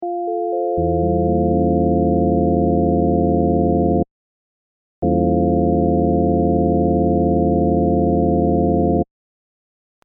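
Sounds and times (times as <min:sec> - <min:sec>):
FM synth over E diminished seventh chord: 0:00.5 - 0:04.0, 0:05.0 - 0:09.0.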